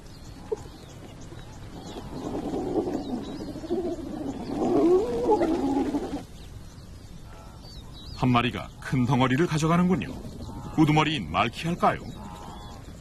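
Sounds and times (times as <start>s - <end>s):
birds chirping faintly: 0.0s - 12.9s
hyenas squabbling over a lion's kill with whoops and growls: 2.0s - 6.3s
speech: 8.2s - 12.2s.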